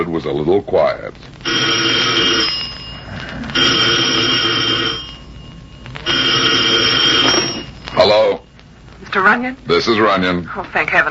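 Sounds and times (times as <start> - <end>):
speech: 0.0 - 2.6, 9.2 - 11.0
telephone ringing with bright jangling bell tone: 1.4 - 10.2.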